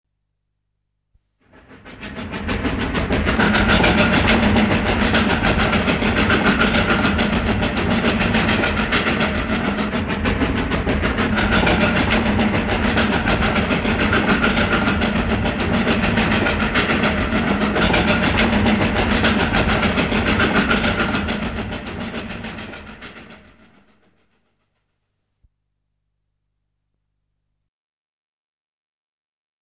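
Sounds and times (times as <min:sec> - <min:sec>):
steam train running: 0:01.4 - 0:24.6.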